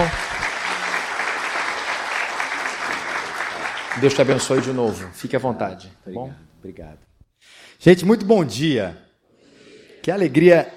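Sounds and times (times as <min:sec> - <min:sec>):
audience applause welcoming a speaker: 0:00.0 - 0:05.3
speech: 0:04.0 - 0:09.0, 0:10.0 - 0:10.7.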